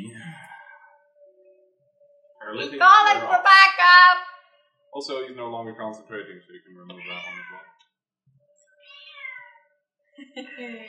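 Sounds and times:
speech: 0:02.5 - 0:04.3, 0:05.0 - 0:07.8, 0:10.4 - 0:10.8
cat meowing: 0:06.9 - 0:07.7, 0:08.8 - 0:09.6.

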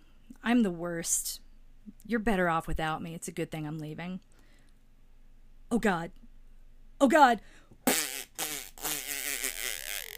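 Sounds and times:
speech: 0:00.5 - 0:01.4, 0:02.1 - 0:04.3, 0:05.7 - 0:06.2, 0:07.0 - 0:08.1
person blowing a raspberry imitating a fart: 0:07.8 - 0:10.1.

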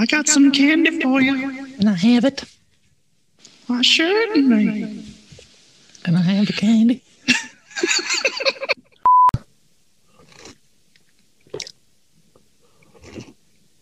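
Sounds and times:
speech: 0:00.0 - 0:02.6, 0:03.7 - 0:05.1, 0:06.0 - 0:08.8
laughter: 0:07.3 - 0:08.8
electronic beep: 0:09.0 - 0:09.4
person slurping hot coffee: 0:10.1 - 0:10.6, 0:12.7 - 0:13.4.

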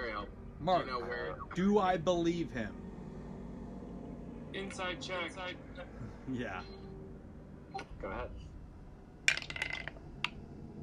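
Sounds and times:
speech: 0:00.6 - 0:02.8, 0:04.6 - 0:06.8, 0:07.8 - 0:08.5
dice clattering across a hard surface: 0:09.3 - 0:10.4.

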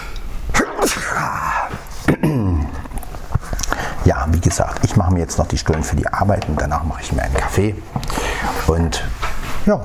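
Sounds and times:
person sneezing: 0:00.5 - 0:02.8
speech: 0:04.1 - 0:09.8.

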